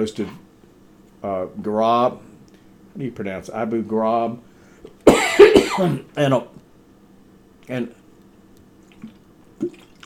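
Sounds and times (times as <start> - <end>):
speech: 0.0 - 0.4, 1.2 - 2.3, 3.0 - 4.5, 5.2 - 6.6, 7.7 - 8.0, 9.0 - 9.8
person coughing in a harsh hacking fit: 5.1 - 6.1.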